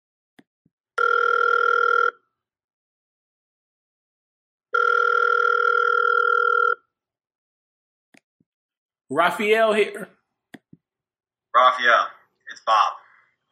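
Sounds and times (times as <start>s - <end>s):
telephone ringback tone heard through the line: 1.0s - 2.2s, 4.7s - 6.9s
speech: 9.1s - 10.2s, 11.6s - 13.0s.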